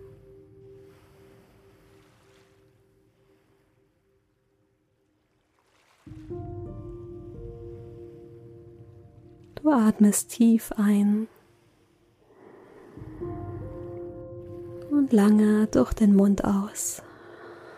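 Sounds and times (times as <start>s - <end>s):
ocean waves below a cliff: 0.0s - 17.7s
speech: 9.6s - 11.4s, 15.1s - 17.1s.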